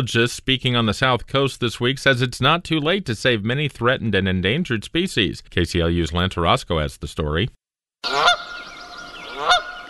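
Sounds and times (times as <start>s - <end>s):
speech: 0.0s - 8.4s
Canada goose honking: 8.0s - 9.8s
faint chorus of other geese calling: 8.0s - 9.8s.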